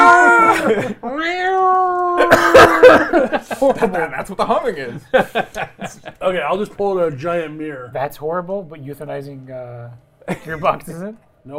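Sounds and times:
laughter: 0:00.2 - 0:01.1, 0:02.0 - 0:06.3
speech: 0:00.7 - 0:01.4, 0:02.3 - 0:11.5
human voice imitating a cat meowing: 0:01.1 - 0:02.3.

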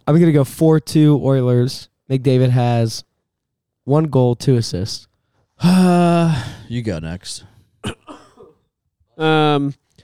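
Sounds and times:
speech: 0:00.0 - 0:03.1, 0:03.9 - 0:08.0, 0:09.2 - 0:09.8
single voiced throaty cough: 0:07.8 - 0:08.7.

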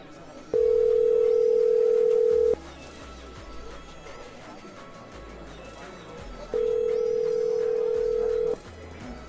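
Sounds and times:
telephone ringing tones through an old dialing machine: 0:00.6 - 0:02.6, 0:06.6 - 0:08.6.

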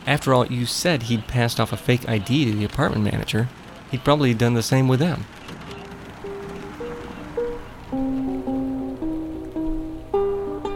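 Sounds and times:
steady rain pattering against a car windshield: 0:00.0 - 0:10.7
speech: 0:00.1 - 0:05.4
slow stepping tonal melody: 0:06.2 - 0:10.7.

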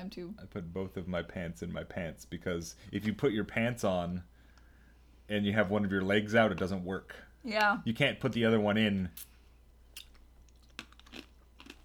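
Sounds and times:
speech: 0:00.0 - 0:04.3, 0:05.3 - 0:09.3
faint low hum: 0:00.0 - 0:11.8
ASMR-style crunchy chewing: 0:10.0 - 0:11.8.

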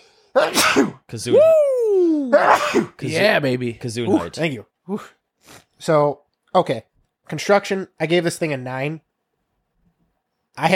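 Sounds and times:
loud sneeze: 0:00.3 - 0:01.1, 0:02.3 - 0:03.2
speech: 0:00.4 - 0:09.1, 0:10.6 - 0:10.7.

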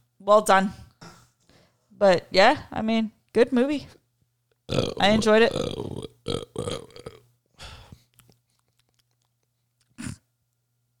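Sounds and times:
speech: 0:00.2 - 0:00.8, 0:02.0 - 0:04.0, 0:04.7 - 0:07.1
person burping: 0:04.7 - 0:07.3, 0:10.0 - 0:10.3
faint wet mouth clicks and smacks: 0:07.9 - 0:10.2.

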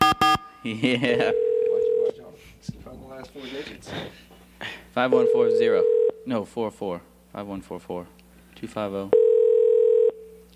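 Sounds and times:
speech: 0:00.1 - 0:01.5, 0:02.6 - 0:09.2
electronic ringback tone on a phone line on an outgoing call: 0:01.2 - 0:02.2, 0:05.1 - 0:06.2, 0:09.1 - 0:10.3.

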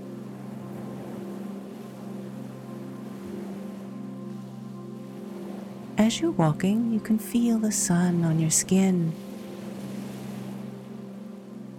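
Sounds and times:
ocean surf washing: 0:00.0 - 0:11.7
speech: 0:06.0 - 0:09.3.

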